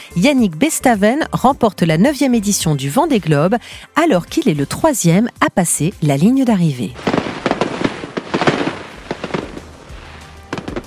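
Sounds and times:
speech: 0:00.1 - 0:07.2
fireworks crackling and popping in the sky: 0:07.0 - 0:10.8.

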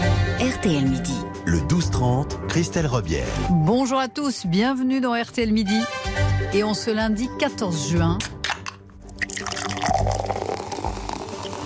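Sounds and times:
speech: 0:00.6 - 0:08.4
drink can cracking open: 0:08.2 - 0:11.6
fizzy liquid pouring: 0:09.1 - 0:11.6.

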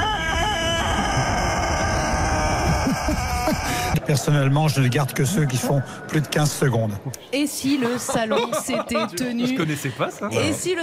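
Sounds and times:
long-crowing rooster crowing: 0:00.0 - 0:03.9
low rumbling background: 0:00.0 - 0:04.0
laughter: 0:02.6 - 0:06.0, 0:07.5 - 0:10.8
speech: 0:04.1 - 0:10.8.

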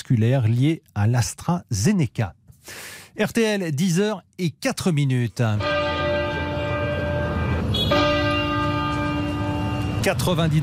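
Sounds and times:
speech: 0:00.1 - 0:05.8, 0:10.0 - 0:10.6
heavy cathedral bells tolling: 0:05.5 - 0:10.6.

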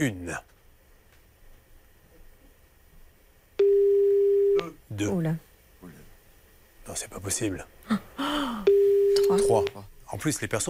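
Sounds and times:
speech: 0:00.0 - 0:00.5, 0:05.0 - 0:06.0, 0:06.9 - 0:08.1, 0:09.3 - 0:10.6
telephone ringing tone from an outgoing call to a home: 0:03.6 - 0:04.6, 0:08.7 - 0:09.7.

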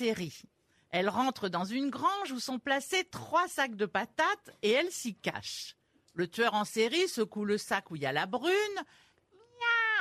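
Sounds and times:
speech: 0:00.0 - 0:09.0
person imitating a cat meowing: 0:09.4 - 0:09.9.

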